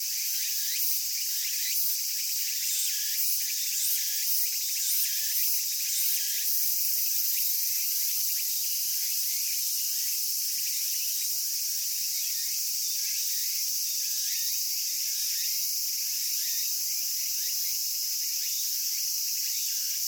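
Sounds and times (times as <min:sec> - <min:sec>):
tsukutsukuboushi cicada calling: 0:00.0 - 0:20.0.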